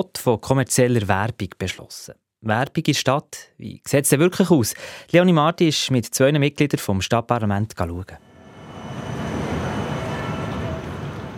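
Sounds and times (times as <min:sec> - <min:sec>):
speech: 0:00.0 - 0:08.3
trams or rail cars rolling past in a busy train station: 0:08.2 - 0:11.3.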